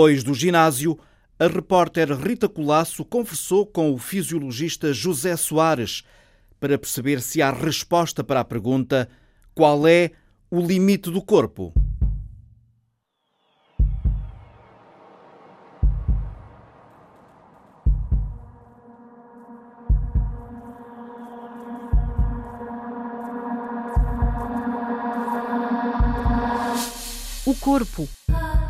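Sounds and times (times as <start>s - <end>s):
speech: 0.0s - 11.8s, 27.5s - 28.6s
deep heartbeat sound effect: 11.8s - 12.4s, 13.8s - 14.4s, 15.8s - 16.5s, 17.9s - 18.8s, 19.9s - 20.7s, 21.9s - 22.7s, 24.0s - 24.7s, 26.0s - 26.6s
musical drone: 13.9s - 28.0s.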